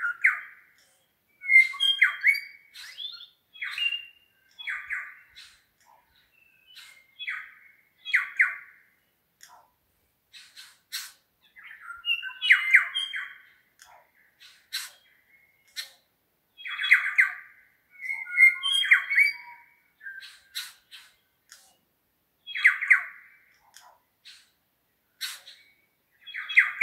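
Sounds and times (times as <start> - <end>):
New Zealand bellbirds Anthornis melanura singing in the Craigieburn Range: 0.0 - 8.6, 11.5 - 16.0, 18.0 - 21.4, 22.5 - 23.6, 25.4 - 26.8.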